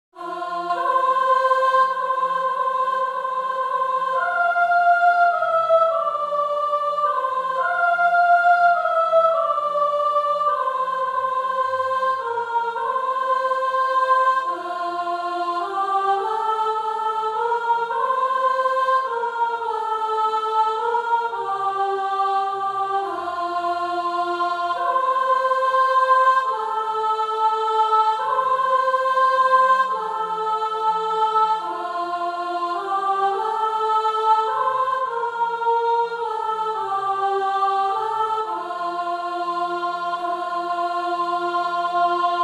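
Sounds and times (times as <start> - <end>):
soprano choir singing: 0.2 - 42.4.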